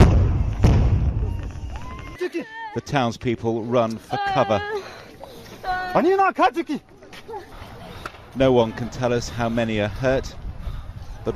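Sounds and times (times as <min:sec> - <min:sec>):
heavy booming thud of a tear gas round being fired: 0:00.0 - 0:01.3
speech: 0:02.3 - 0:04.8, 0:05.9 - 0:06.9, 0:08.4 - 0:10.4.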